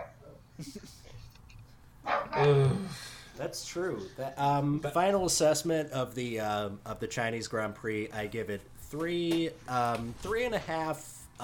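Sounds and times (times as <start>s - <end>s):
speech: 0.6s - 1.0s, 3.4s - 11.4s
dog barking excitedly: 2.0s - 2.4s.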